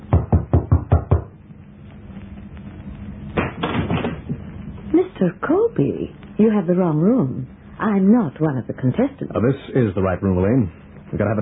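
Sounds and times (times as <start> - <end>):
quick solid knocks on a door: 0.0 - 1.4
speech: 5.2 - 11.4.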